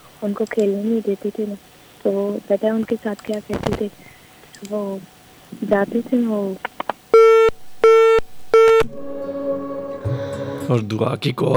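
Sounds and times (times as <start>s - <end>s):
speech: 0.2s - 7.3s, 10.7s - 11.5s
phone call disconnect tone beeps: 7.2s - 8.9s.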